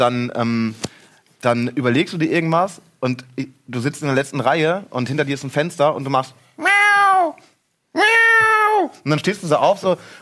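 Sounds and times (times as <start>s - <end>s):
speech: 0.0s - 0.8s, 1.4s - 10.1s
person imitating cat meows: 6.6s - 9.0s.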